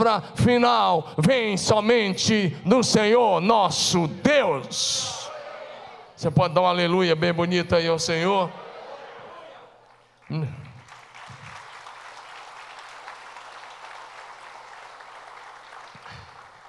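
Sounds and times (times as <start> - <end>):
speech: 0.0 - 5.2, 6.2 - 8.6, 10.3 - 10.6
voices calling out: 5.0 - 6.2
audience applauding: 9.5 - 16.6.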